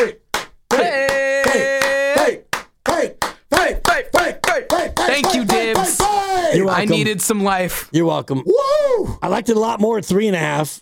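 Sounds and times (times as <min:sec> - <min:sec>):
speech: 0:00.0 - 0:00.2, 0:06.5 - 0:10.8
hand clapping: 0:00.0 - 0:06.3.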